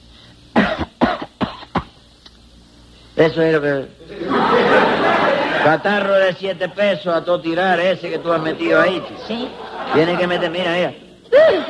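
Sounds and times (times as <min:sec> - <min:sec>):
person coughing hard to sound like bronchitis: 0:00.6 - 0:02.0
speech: 0:03.2 - 0:11.6
laughter: 0:04.1 - 0:06.8, 0:07.7 - 0:11.6.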